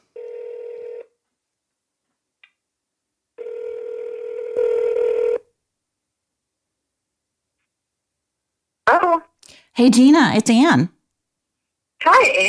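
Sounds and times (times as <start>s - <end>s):
electronic telephone ring-back tone as a call is placed: 0.2s - 1.1s, 3.4s - 5.4s
speech: 9.8s - 11.0s, 12.0s - 12.4s.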